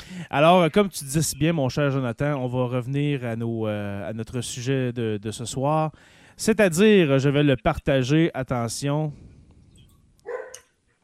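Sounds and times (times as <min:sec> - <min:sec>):
speech: 0:00.1 - 0:09.3
dog barking: 0:10.2 - 0:10.7.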